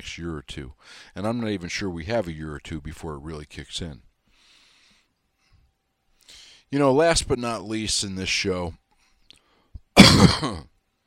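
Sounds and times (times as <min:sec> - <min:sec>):
speech: 0:00.0 - 0:04.1, 0:06.7 - 0:08.8, 0:10.0 - 0:10.7
raspy throat clearing rolling into a short cough: 0:10.0 - 0:10.8.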